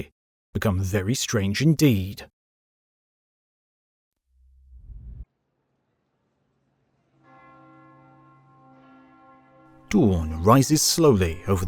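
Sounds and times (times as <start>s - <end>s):
speech: 0.0s - 2.3s, 9.9s - 11.6s
heavy church bell tolling: 6.2s - 11.6s.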